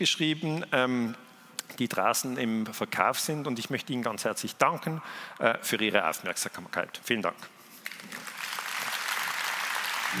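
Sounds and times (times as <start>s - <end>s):
speech: 0.0s - 8.2s
audience applause: 8.0s - 10.1s.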